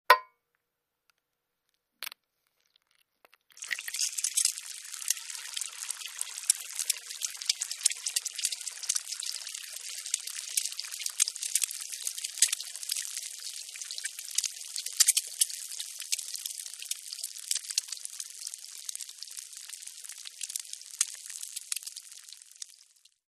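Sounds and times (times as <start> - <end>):
egg cracking: 2.0 - 23.1.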